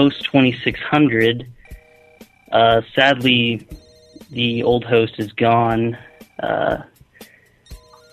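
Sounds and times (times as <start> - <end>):
speech: 0.0 - 1.7, 2.5 - 6.9
telephone ringing: 1.6 - 6.8, 7.6 - 8.1.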